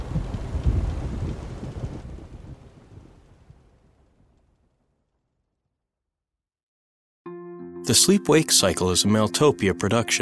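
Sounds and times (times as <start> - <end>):
storm wind: 0.0 - 4.8
heavy low thunder rumbling: 0.0 - 5.0
storm rain: 0.0 - 5.0
speech: 7.9 - 10.2.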